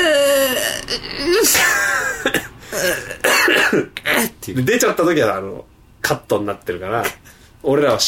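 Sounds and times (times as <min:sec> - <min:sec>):
strained vocal sounds: 0:00.0 - 0:03.3
short stifled coughs: 0:01.4 - 0:04.4
speech: 0:04.5 - 0:08.0.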